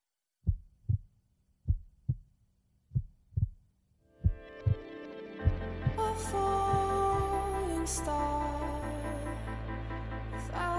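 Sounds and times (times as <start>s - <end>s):
heartbeat rhythm at a song's beginning: 0.4s - 2.3s, 2.9s - 3.6s, 4.2s - 4.8s, 5.4s - 7.3s
sustained music: 4.1s - 10.7s.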